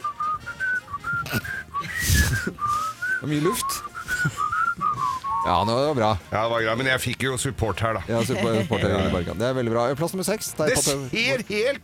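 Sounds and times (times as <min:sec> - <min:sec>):
person whistling a tune: 0:00.0 - 0:05.7
speech: 0:03.2 - 0:03.8, 0:05.5 - 0:11.8
laughter: 0:04.0 - 0:05.2, 0:07.9 - 0:09.5.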